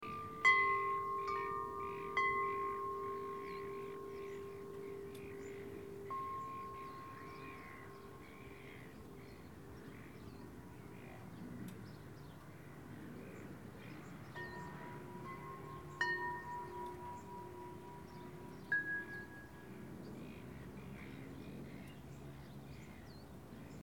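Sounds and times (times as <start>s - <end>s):
quiet wind chimes: 0.0s - 20.6s
distant birds: 0.0s - 23.8s.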